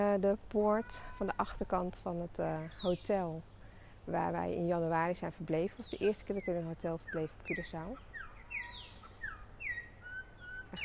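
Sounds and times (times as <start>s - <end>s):
speech: 0.0s - 8.7s
bird calling at a hotel on Curaçao: 1.4s - 3.8s, 5.4s - 10.8s.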